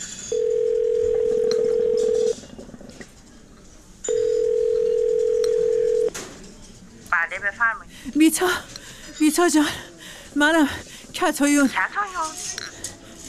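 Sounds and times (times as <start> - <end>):
telephone dial tone: 0.4 - 2.4, 4.1 - 6.1
speech: 8.2 - 12.4.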